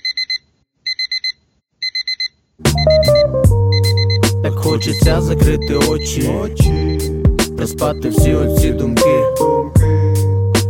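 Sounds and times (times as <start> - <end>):
digital alarm clock beeping: 0.0 - 7.2
loud music with heavy drums: 2.7 - 6.0, 6.6 - 9.1, 9.8 - 10.6
speech: 4.6 - 10.0.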